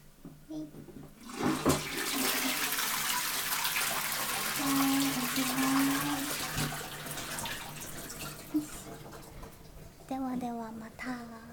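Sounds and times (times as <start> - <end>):
toilet flushing: 1.2 - 10.2
speech: 10.4 - 11.4.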